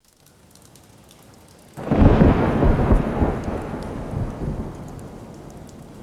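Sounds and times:
light rain: 0:00.0 - 0:06.0
distant thunder boom: 0:01.8 - 0:06.0.

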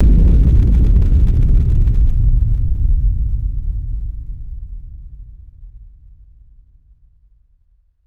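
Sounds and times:
massive designed cinematic low end boom: 0:00.0 - 0:05.2.

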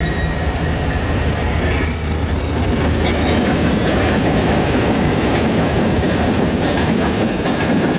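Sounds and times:
high pitched freight train squeal: 0:00.0 - 0:04.2
freight train clanking: 0:00.0 - 0:07.9.

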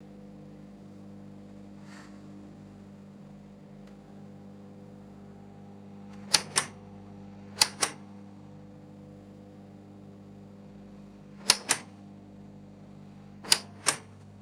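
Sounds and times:
heavy boat cabin light switch clicks: 0:06.1 - 0:06.8, 0:07.6 - 0:08.1, 0:11.4 - 0:12.0, 0:13.4 - 0:14.2.

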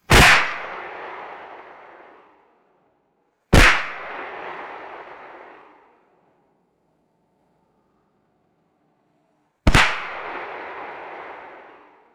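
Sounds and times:
loud echoing firecracker pops: 0:00.1 - 0:02.4, 0:03.6 - 0:06.1, 0:09.7 - 0:12.1.

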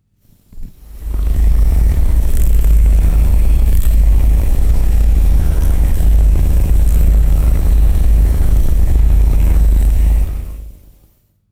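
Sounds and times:
low continuous moth wing vibration: 0:00.6 - 0:10.9.

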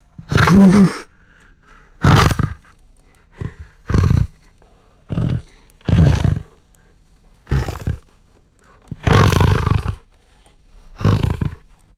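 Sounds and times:
horse snorting and grunting exhales: 0:00.2 - 0:01.1, 0:02.0 - 0:04.5, 0:05.1 - 0:06.6, 0:07.4 - 0:08.1, 0:08.9 - 0:10.1, 0:10.9 - 0:11.7.

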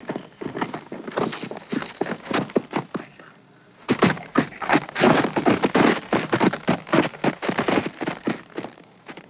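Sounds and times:
scrambling and stepping on loose rocks: 0:00.0 - 0:03.0, 0:03.9 - 0:08.6.

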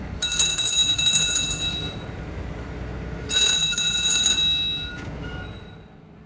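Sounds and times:
metallic coach bell rings: 0:00.2 - 0:02.1, 0:03.3 - 0:05.9.

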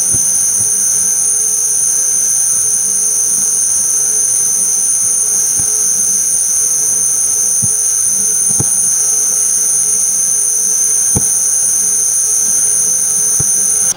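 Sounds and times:
continuous high pitched synthetic laser beam: 0:00.2 - 0:13.9.

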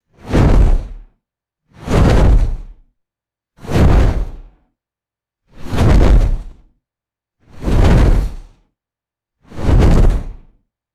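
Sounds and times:
heavy giant wings flapping: 0:00.3 - 0:00.9, 0:02.0 - 0:02.7, 0:03.7 - 0:04.4, 0:05.8 - 0:06.6, 0:07.6 - 0:08.4, 0:09.6 - 0:10.4.

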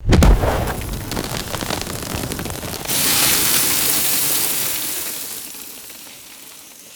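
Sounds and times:
crunchy snow impact: 0:00.0 - 0:04.2
debris raining down: 0:00.0 - 0:06.1.

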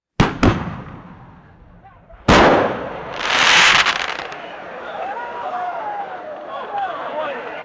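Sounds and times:
loud firework mortar launch: 0:00.2 - 0:04.5.

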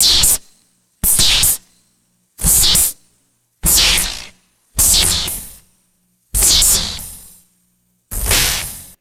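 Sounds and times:
short stylized retro electric zaps: 0:00.0 - 0:00.4, 0:01.0 - 0:01.7, 0:02.4 - 0:03.0, 0:03.6 - 0:05.6, 0:06.4 - 0:07.4, 0:08.1 - 0:08.9.

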